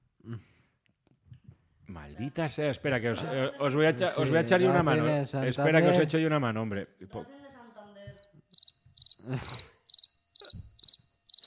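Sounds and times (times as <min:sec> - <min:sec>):
speech: 0:02.0 - 0:07.4, 0:09.3 - 0:09.6
crickets chirping: 0:07.7 - 0:11.4.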